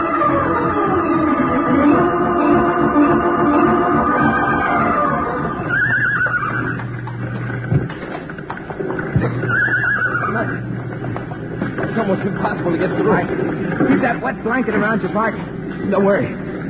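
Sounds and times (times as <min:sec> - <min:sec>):
low steady roar: 0:00.0 - 0:16.6
frightened horses neighing and whinnying in a burning barn: 0:04.6 - 0:13.9
horse hoof clatter: 0:05.5 - 0:14.9
speech: 0:12.6 - 0:16.4.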